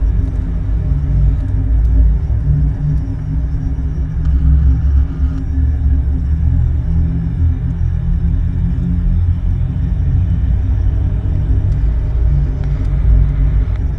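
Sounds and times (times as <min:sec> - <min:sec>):
deep bass hum: 0:00.0 - 0:13.9.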